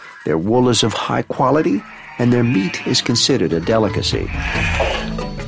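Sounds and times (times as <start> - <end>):
speech: 0.2 - 5.2
Shetland sheep bleating: 1.8 - 5.3.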